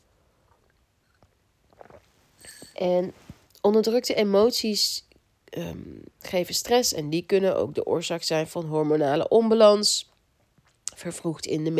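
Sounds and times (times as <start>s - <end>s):
sipping tea: 0.5s - 2.8s
speech: 2.8s - 10.1s, 11.0s - 11.7s.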